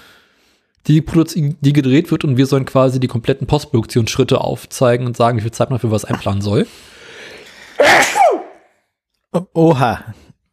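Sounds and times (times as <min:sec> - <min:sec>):
speech: 0:00.9 - 0:07.0, 0:09.3 - 0:10.3
person sneezing: 0:07.7 - 0:08.7.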